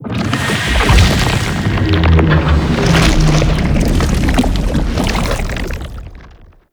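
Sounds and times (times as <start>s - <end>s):
engine pull start in gameplay: 0.0s - 5.6s.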